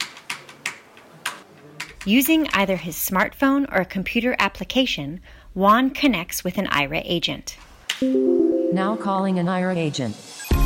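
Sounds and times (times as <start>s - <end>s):
typing on a computer keyboard: 0.0s - 2.2s
speech: 2.0s - 10.2s.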